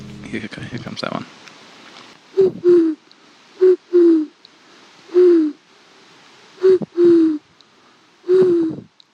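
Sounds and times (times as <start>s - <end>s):
speech: 0.3s - 1.5s
person imitating a dove or pigeon coo by pushing air through the tongue: 2.4s - 3.0s, 3.6s - 4.4s, 5.1s - 5.6s, 6.6s - 7.5s, 8.2s - 9.0s.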